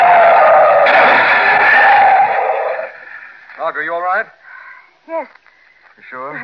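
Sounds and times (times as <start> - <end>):
car tires screeching as it skids and swerves on a road: 0.0 - 3.0
speech: 3.8 - 4.4, 5.1 - 6.4.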